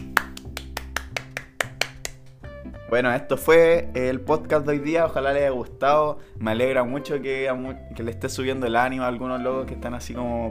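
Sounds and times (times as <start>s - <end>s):
sharp crisp hand claps: 0.0s - 2.5s
quiet sustained music bed: 0.0s - 10.5s
speech: 2.9s - 10.5s.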